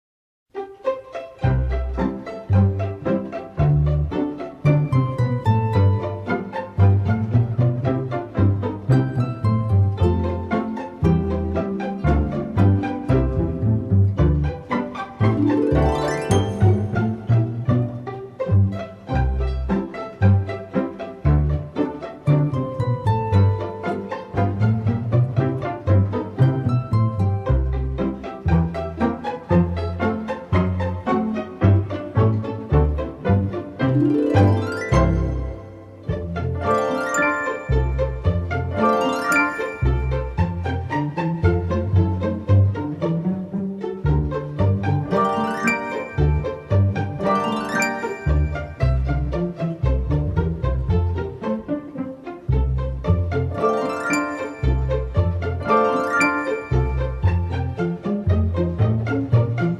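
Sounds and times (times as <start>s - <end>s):
pizzicato comedy background music: 0.5s - 59.7s.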